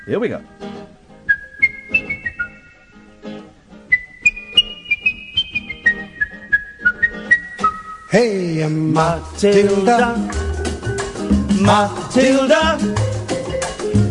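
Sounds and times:
speech: 0:00.0 - 0:00.7, 0:08.1 - 0:10.4, 0:11.6 - 0:13.0
faint accompaniment: 0:00.0 - 0:14.0
person whistling a bouncy melodic tune: 0:01.3 - 0:02.8, 0:03.9 - 0:08.3.

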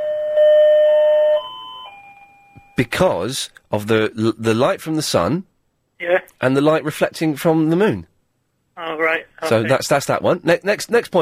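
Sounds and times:
electronic doorbell chiming a short melody: 0:00.0 - 0:02.8
speech: 0:02.8 - 0:08.1, 0:08.8 - 0:11.2.

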